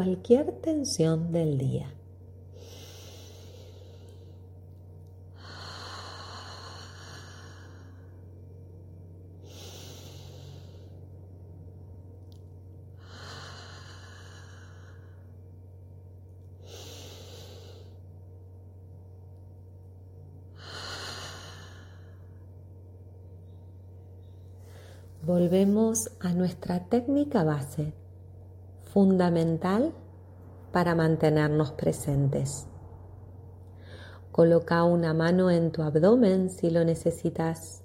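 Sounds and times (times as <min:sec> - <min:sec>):
speech: 0:00.0 - 0:02.0, 0:25.4 - 0:28.0, 0:29.0 - 0:30.0, 0:30.7 - 0:32.7, 0:34.4 - 0:37.8
steady low hum: 0:00.0 - 0:37.8
slow deep breathing in through the nose and out through the mouth: 0:02.4 - 0:04.6, 0:05.2 - 0:11.4, 0:12.8 - 0:15.8, 0:16.4 - 0:18.4, 0:20.5 - 0:22.7, 0:24.3 - 0:25.2, 0:33.6 - 0:34.3.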